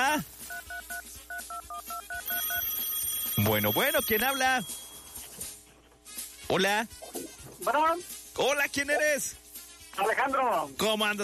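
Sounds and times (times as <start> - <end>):
speech: 0.2 - 0.4, 3.4 - 4.8, 6.5 - 7.0, 7.6 - 9.4, 10.0 - 11.2
electronic two-tone telephone beeps on an incoming call line: 0.5 - 5.3.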